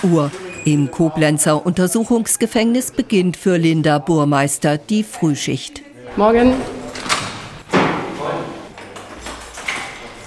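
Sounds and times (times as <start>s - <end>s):
speech: 0.0s - 6.8s
heavy metal prison cell door slammed shut by a prison officer in Koblenz Germany: 6.9s - 8.3s.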